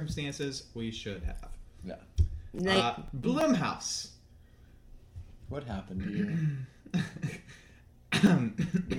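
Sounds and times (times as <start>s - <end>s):
speech: 0.0s - 4.2s, 5.5s - 8.9s
person choking and coughing: 6.0s - 7.5s, 8.1s - 8.9s.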